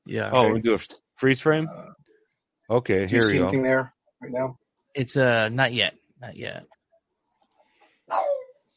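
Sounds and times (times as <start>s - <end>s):
speech: 0.1s - 2.0s, 2.7s - 6.8s
faint clicks: 7.3s - 7.7s
dog barking: 8.1s - 8.5s.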